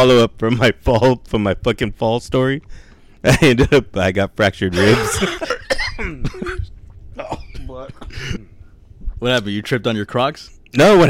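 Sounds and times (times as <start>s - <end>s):
speech: 0.0s - 8.5s, 9.2s - 11.0s
person coughing: 4.8s - 8.5s.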